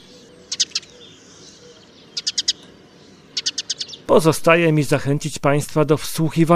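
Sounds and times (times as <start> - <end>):
Eurasian tree sparrow chirping with metallic trill: 0.0 - 4.1
speech: 4.1 - 6.5.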